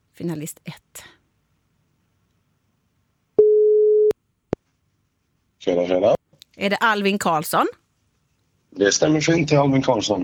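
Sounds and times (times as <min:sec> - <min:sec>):
speech: 0:00.2 - 0:01.1, 0:05.6 - 0:07.8, 0:08.7 - 0:10.2
telephone ringback tone on a call waiting to be answered: 0:03.4 - 0:04.1.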